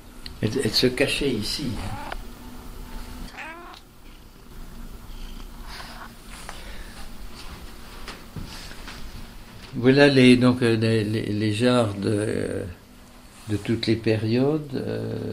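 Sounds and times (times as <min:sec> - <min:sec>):
speech: 0:00.4 - 0:02.1, 0:09.8 - 0:12.8, 0:13.5 - 0:15.3
cat meowing with rising wavering cries: 0:01.8 - 0:02.2, 0:03.3 - 0:03.9.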